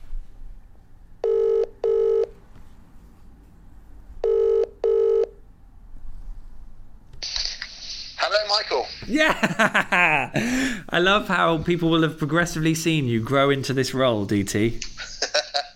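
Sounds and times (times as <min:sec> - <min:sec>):
double-pulse telephone ringback tones: 0:01.2 - 0:02.3, 0:04.2 - 0:05.4
speech: 0:08.6 - 0:15.0
laughter: 0:09.0 - 0:10.8, 0:14.8 - 0:15.7.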